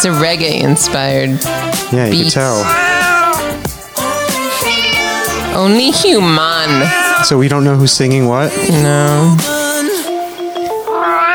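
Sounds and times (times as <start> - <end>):
speech: 0.0 - 3.1, 5.6 - 9.6
steady musical backing: 0.0 - 11.3
cat meows woven into a song: 2.2 - 3.5, 4.4 - 7.3, 10.9 - 11.3.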